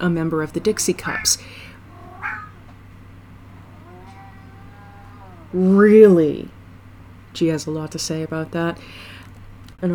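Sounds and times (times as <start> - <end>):
speech: 0.0 - 1.7, 5.5 - 6.6, 7.4 - 9.1, 9.8 - 9.9
low steady hum: 0.0 - 9.9
cat meowing for food: 1.0 - 2.8, 3.5 - 5.6.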